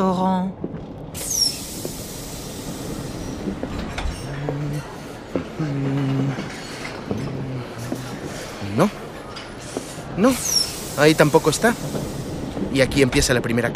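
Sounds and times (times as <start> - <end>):
speech: 0.0 - 1.4, 10.2 - 13.7
long passenger train in motion rumbling: 0.0 - 13.7
train wheel squeals: 1.2 - 4.4, 9.4 - 12.3.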